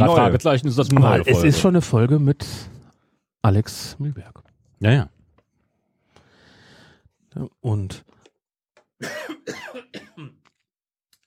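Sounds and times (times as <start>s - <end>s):
speech: 0.0s - 2.8s, 3.4s - 5.2s, 7.4s - 8.2s, 9.0s - 10.4s
loud harsh coughs: 9.0s - 10.4s.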